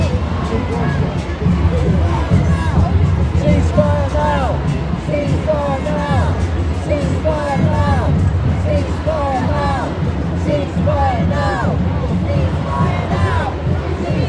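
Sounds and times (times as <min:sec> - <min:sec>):
crowd of overlapping voices in a large street march: 0:00.0 - 0:14.2.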